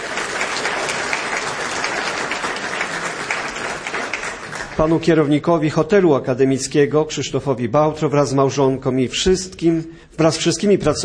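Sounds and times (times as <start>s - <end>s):
large congress audience applauding: 0.0s - 5.2s
speech: 4.8s - 11.0s.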